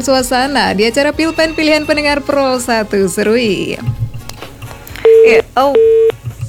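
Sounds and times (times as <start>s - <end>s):
speech: 0.0s - 4.0s, 5.2s - 6.1s
telephone busy signal after a call drops: 5.0s - 6.4s.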